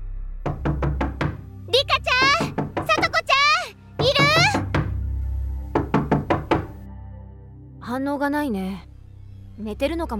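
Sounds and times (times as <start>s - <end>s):
quick knocks on a wooden door: 0.5s - 5.1s, 5.7s - 6.8s
speech: 8.0s - 8.9s, 9.6s - 10.1s.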